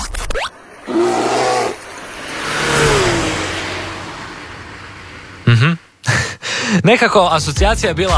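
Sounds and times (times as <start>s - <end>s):
racing car engine revving at a racetrack: 0.1s - 6.2s
speech: 0.9s - 1.2s, 5.5s - 8.1s.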